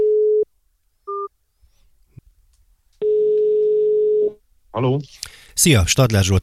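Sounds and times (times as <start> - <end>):
telephone line tones while a call is placed: 3.0 - 4.3
speech: 4.8 - 6.4.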